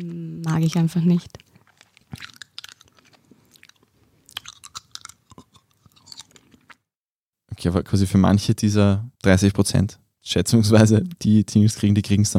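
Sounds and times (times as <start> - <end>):
speech: 0.0 - 1.4, 7.6 - 12.3
wet smacking and chewing of candy in ASMR style: 0.0 - 6.9.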